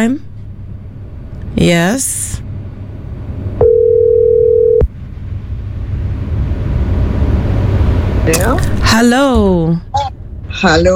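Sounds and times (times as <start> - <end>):
speech: 0.0 - 0.3, 1.5 - 2.5, 8.3 - 10.9
low rumble: 0.0 - 10.9
WhatsApp call ringing tone as a steady electronic beep: 3.6 - 4.8.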